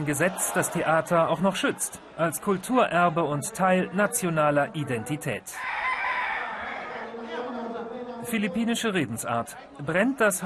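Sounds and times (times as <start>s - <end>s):
speech: 0.0s - 5.8s, 8.3s - 10.4s
rooster crowing: 5.6s - 7.2s.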